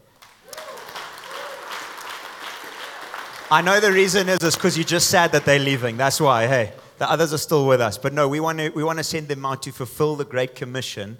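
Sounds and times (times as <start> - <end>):
crowd applauding: 0.0 - 6.8
speech: 3.5 - 11.1.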